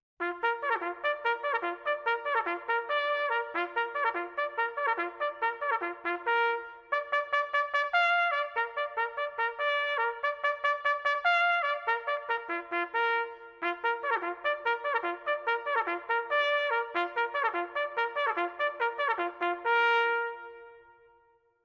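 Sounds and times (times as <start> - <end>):
bugle call at low volume: 0.2 - 20.8.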